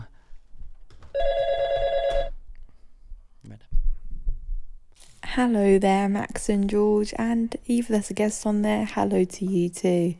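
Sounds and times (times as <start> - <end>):
telephone ringing: 1.2 - 2.4
speech: 5.4 - 10.1.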